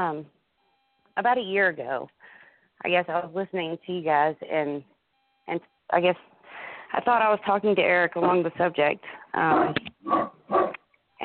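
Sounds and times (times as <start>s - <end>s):
speech: 0.0s - 0.4s, 1.2s - 4.9s, 5.5s - 10.6s
dog barking with short yelping barks: 9.6s - 10.8s.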